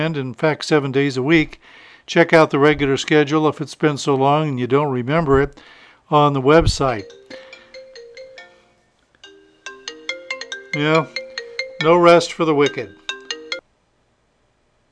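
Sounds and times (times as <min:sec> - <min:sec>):
speech: 0:00.0 - 0:07.4, 0:10.8 - 0:11.2, 0:11.8 - 0:13.0
phone ringtone ringing: 0:06.8 - 0:13.6.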